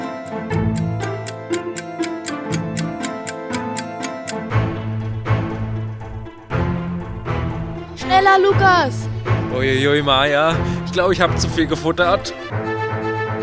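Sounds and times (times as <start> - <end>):
clock ticking: 0.0 - 4.5
bouncy music: 0.0 - 13.4
speech: 8.4 - 12.6.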